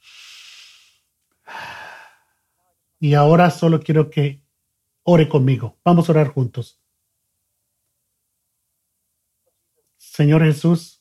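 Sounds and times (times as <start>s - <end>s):
slow deep breath in during a guided pause before prayer: 0.0s - 2.5s
speech: 3.0s - 4.4s, 5.0s - 6.8s, 10.2s - 11.0s.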